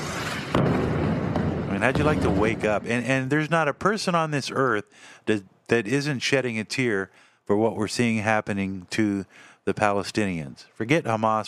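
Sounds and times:
bomb explosion from fighting between Israel and Gaza: 0.0 - 3.1
speech: 0.6 - 1.0, 1.8 - 11.4.

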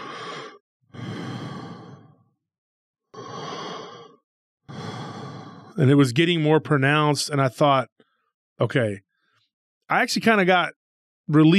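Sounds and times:
person imitating heavy breathing: 0.0 - 2.1, 3.2 - 4.1, 4.7 - 5.8
speech: 5.8 - 7.9, 8.6 - 9.1, 9.9 - 11.5.

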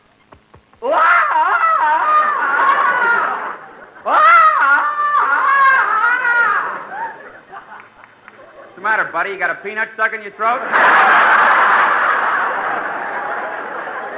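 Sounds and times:
man doing a warbling jungle yell: 0.8 - 7.0
laughter: 0.8 - 9.1, 10.5 - 14.1
speech: 9.2 - 11.3.

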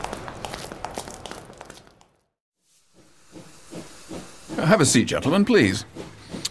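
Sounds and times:
steam hissing from a train at a station: 2.7 - 6.4
speech: 4.6 - 6.0.

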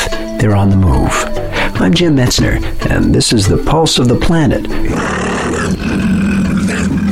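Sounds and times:
speech: 0.4 - 6.1
mountain lion growling yowl: 4.8 - 7.1.

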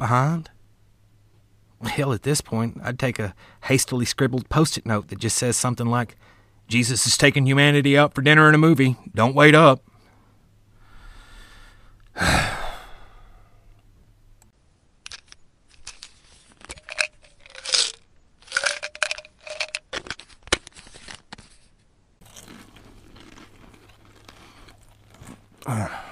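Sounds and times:
speech: 0.0 - 0.5, 1.8 - 9.9, 12.2 - 12.5
small hard pills rattling and clicking out of a container: 15.0 - 21.6
wet crunching of pills being chewed: 16.6 - 20.1, 22.2 - 26.1.

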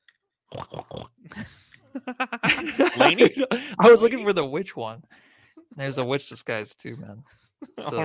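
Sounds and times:
person imitating pig snorting and grunting oinks: 0.5 - 1.5
laughter: 1.9 - 4.2, 7.6 - 8.0
speech: 2.0 - 8.0.

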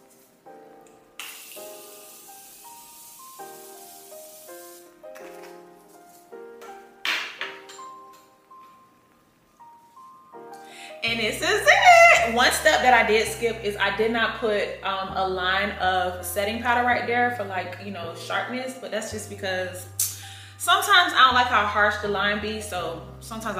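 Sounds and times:
soft melodic music: 0.0 - 23.5
setting spray mist hissing on face: 1.2 - 5.1
speech: 11.1 - 20.0, 20.6 - 23.5.

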